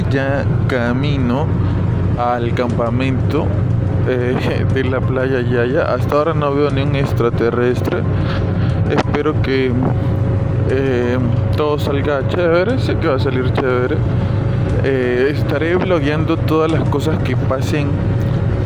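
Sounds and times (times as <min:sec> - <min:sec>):
car interior road rumble while driving: 0:00.0 - 0:18.6
speech: 0:00.1 - 0:18.2.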